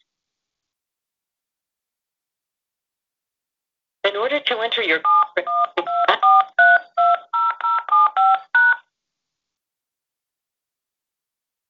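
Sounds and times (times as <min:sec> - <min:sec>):
speech: 0:04.1 - 0:06.2
telephone keypad tones dialing into a conference call line: 0:05.0 - 0:08.8.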